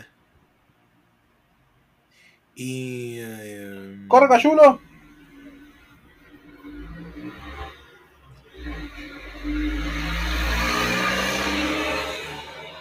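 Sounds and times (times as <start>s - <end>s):
speech: 2.6s - 4.9s
heavy motor vehicle engine roaring past: 4.7s - 12.8s.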